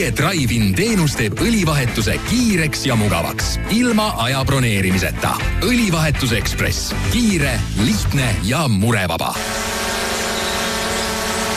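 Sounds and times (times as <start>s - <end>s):
speech: 0.0s - 9.8s
small drone hovering with electric whine: 9.4s - 11.5s.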